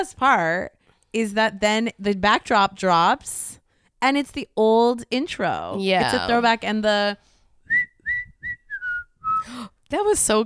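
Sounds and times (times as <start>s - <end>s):
speech: 0.0s - 7.3s, 9.4s - 10.4s
person whistling: 7.6s - 9.6s.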